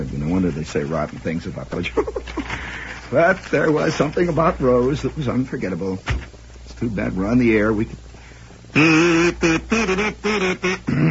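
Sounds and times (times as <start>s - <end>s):
speech: 0.2s - 6.2s, 6.8s - 8.1s, 8.8s - 11.1s
person imitating duck quacks: 8.8s - 11.1s.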